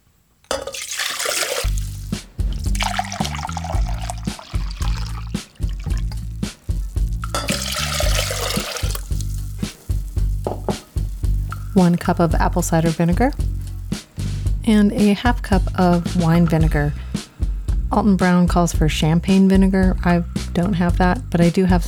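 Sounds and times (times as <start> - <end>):
water pouring into a measuring container: 0.5 - 13.7
low music: 1.6 - 21.8
speech: 11.8 - 13.5, 14.7 - 17.0, 17.9 - 21.8.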